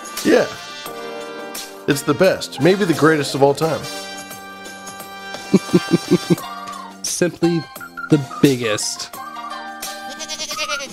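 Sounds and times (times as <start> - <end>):
speech: 0.2 - 0.6, 1.9 - 4.1, 5.7 - 6.5, 7.2 - 9.2
laughter: 5.5 - 6.4
goat bleating: 10.1 - 10.9.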